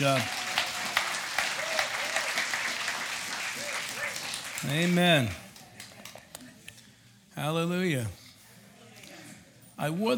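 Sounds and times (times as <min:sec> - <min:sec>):
speech: 0:00.0 - 0:00.4, 0:04.6 - 0:05.4, 0:07.4 - 0:08.2, 0:09.8 - 0:10.1
scattered cheers or voices: 0:00.0 - 0:02.8
audience at a church service applauding a pastor: 0:00.0 - 0:06.5.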